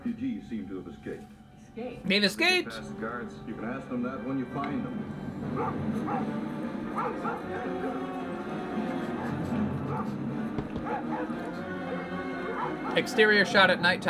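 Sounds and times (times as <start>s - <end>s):
speech: 0.4s - 8.2s, 8.8s - 14.0s
indistinct voices: 2.1s - 14.0s
German Shepherd search dogs barking outdoors at night: 5.4s - 13.6s.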